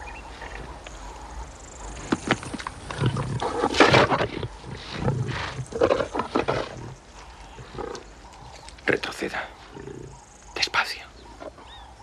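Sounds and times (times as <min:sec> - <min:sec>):
pair of lions growling and snarling while feeding on a buffalo carcass: 0:01.7 - 0:10.3.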